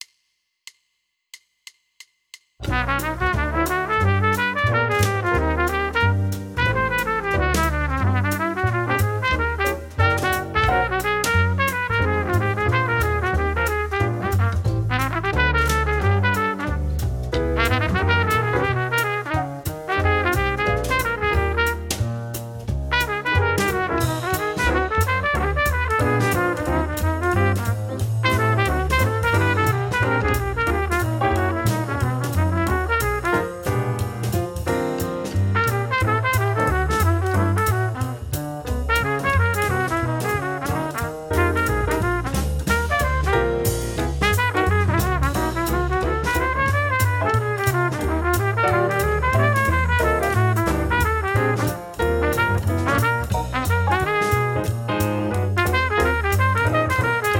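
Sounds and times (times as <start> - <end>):
jazz etude: 2.6 - 57.3.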